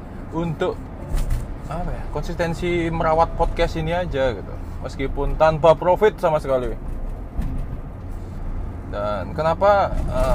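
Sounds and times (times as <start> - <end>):
car interior road and engine drone while driving: 0.0 - 10.3
speech: 0.3 - 7.5, 8.9 - 10.3
thump: 7.4 - 7.8.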